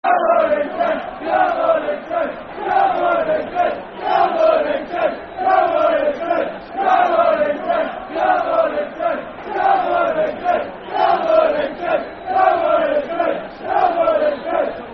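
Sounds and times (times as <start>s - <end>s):
football crowd chanting: 0.0s - 14.9s.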